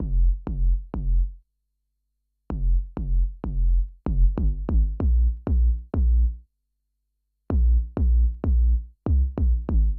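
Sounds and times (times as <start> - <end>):
viral hip hop bass: 0.0 - 1.3, 2.5 - 6.4, 7.5 - 9.9.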